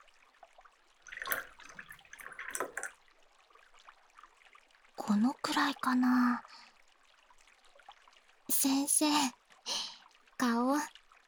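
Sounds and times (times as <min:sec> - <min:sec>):
drink refill pouring into a cup: 0:01.1 - 0:03.0
speech: 0:05.1 - 0:06.6, 0:08.6 - 0:09.8, 0:10.4 - 0:11.0.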